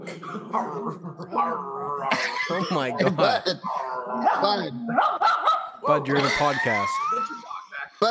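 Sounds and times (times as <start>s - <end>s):
laughter: 0.0s - 3.6s, 6.0s - 7.8s
speech: 0.0s - 7.4s
dog growling and barking: 0.2s - 2.4s, 3.6s - 5.8s.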